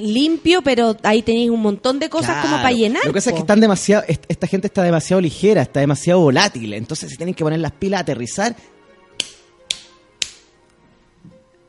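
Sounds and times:
speech: 0.0 - 9.3
strong forceful hand slaps: 9.2 - 10.5.

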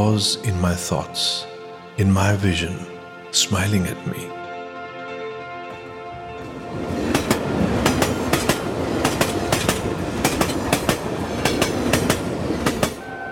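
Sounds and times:
speech: 0.0 - 4.4
constant low rumble of a moving train: 5.7 - 13.3
moving train wheels clicking over rail joints: 6.9 - 13.0.

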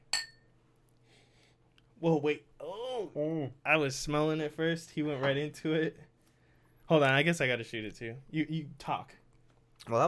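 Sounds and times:
glasses clinking in a toast: 0.0 - 0.5
speech: 2.0 - 6.1, 6.9 - 9.2, 9.8 - 10.0.

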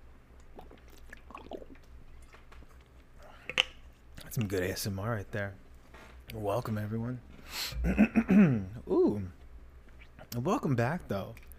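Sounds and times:
low steady hum: 0.0 - 11.5
soft gulps and swallows of drinking water: 0.4 - 3.8
speech: 4.4 - 5.6, 6.3 - 9.4, 10.3 - 11.5.

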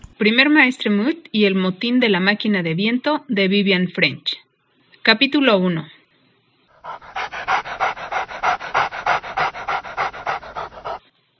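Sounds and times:
speech: 0.2 - 4.4, 5.0 - 5.9
dog panting: 6.7 - 11.1.

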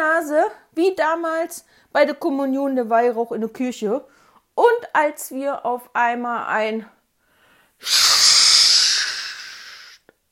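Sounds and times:
speech: 0.0 - 7.0, 7.8 - 8.1
voice imitating a small red fire extinguisher spraying: 7.8 - 10.0.

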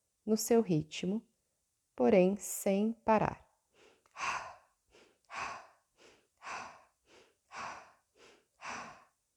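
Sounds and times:
speech: 0.3 - 1.3, 2.0 - 3.4, 4.2 - 4.4
soft inhales through the nose in a breathing exercise: 3.7 - 9.2
louder exhales through the mouth in a breathing exercise: 3.8 - 9.2.

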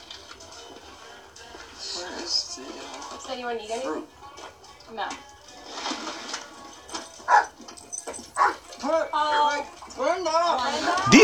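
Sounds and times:
speech: 3.3 - 4.2, 4.9 - 5.3, 8.8 - 11.2
dogs whimpering and yipping along a trail: 7.2 - 8.8.

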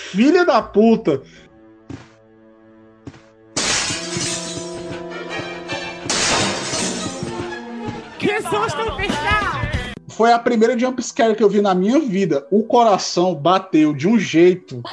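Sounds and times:
speech: 0.1 - 1.4, 10.2 - 14.9
sustained tonal music bed: 0.1 - 14.9
glass window shattering in a video game: 3.6 - 4.8, 6.1 - 7.2.

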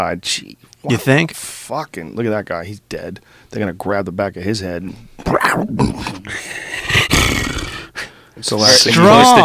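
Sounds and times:
speech: 0.0 - 7.4, 8.4 - 9.4
tiger growling and roaring: 6.8 - 7.9.

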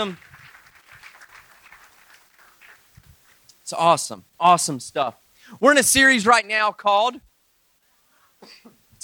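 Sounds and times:
speech: 0.0 - 0.3, 3.7 - 7.3, 8.4 - 9.0
audience applause: 0.0 - 3.4.

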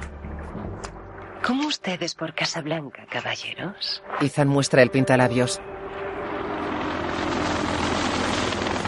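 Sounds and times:
speech: 1.5 - 5.8
helicopter engine whine: 5.6 - 8.8
helicopter rotor thudding while landing on a helipad: 6.2 - 8.8.

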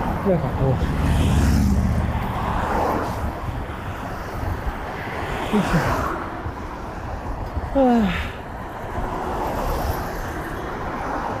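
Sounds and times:
road traffic rumble at a bridge by the sea: 0.0 - 11.3
speech: 0.2 - 1.4, 5.5 - 6.1, 7.7 - 8.3.

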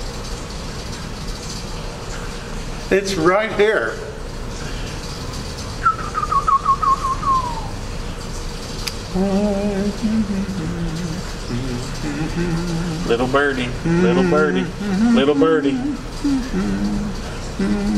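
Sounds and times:
steady hum: 0.0 - 17.9
speech: 2.9 - 4.1, 9.2 - 10.8, 12.0 - 17.9
whistled hymn melody: 5.8 - 7.7
lower sustained melodic voice tones: 9.1 - 17.9.

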